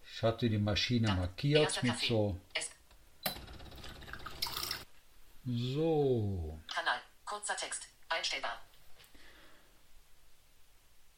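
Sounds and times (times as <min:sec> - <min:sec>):
speech: 0:00.2 - 0:02.6, 0:05.5 - 0:08.7
coffee machine dispensing water into a glass of coffee: 0:03.3 - 0:04.8.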